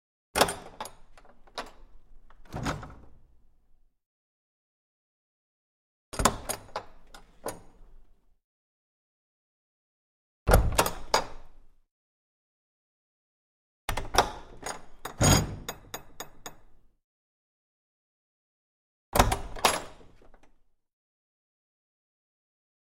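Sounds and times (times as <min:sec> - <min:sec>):
small wooden door with latch: 0:00.4 - 0:03.6, 0:06.2 - 0:08.2, 0:10.5 - 0:11.8, 0:13.9 - 0:16.8, 0:19.2 - 0:20.7.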